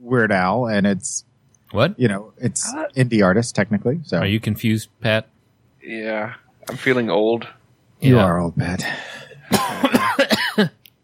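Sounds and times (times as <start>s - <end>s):
speech: 0.1s - 9.2s
person coughing and sputtering after inhaling bourbon: 9.2s - 10.8s.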